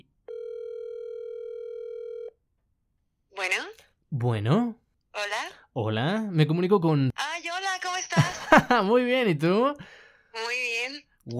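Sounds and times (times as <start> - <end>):
buzzy telephone tone while a call is dialed: 0.0 - 2.4
speech: 3.4 - 7.1, 8.6 - 11.3
laughter: 8.1 - 8.8.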